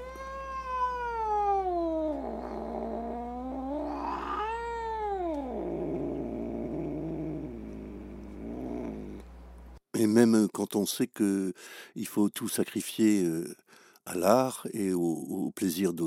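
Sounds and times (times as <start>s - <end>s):
hungry cat caterwauling: 0.0s - 7.6s
speech: 10.0s - 16.0s.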